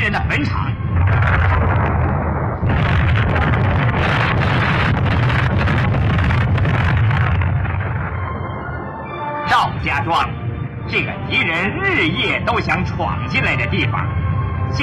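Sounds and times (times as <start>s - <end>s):
landmines exploding in a continuous barrage: 0.0s - 9.2s
speech: 0.1s - 1.2s, 10.1s - 14.8s.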